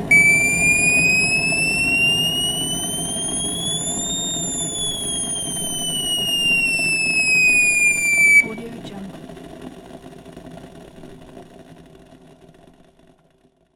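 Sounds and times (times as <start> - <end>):
kettle whistling: 0.1 - 8.7.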